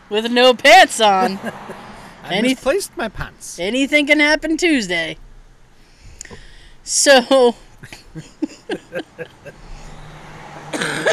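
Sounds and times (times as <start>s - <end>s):
speech: 0.1s - 5.2s, 6.3s - 9.6s
laughter: 1.0s - 2.4s, 7.8s - 9.6s
person coughing: 7.8s - 9.5s, 10.7s - 11.1s.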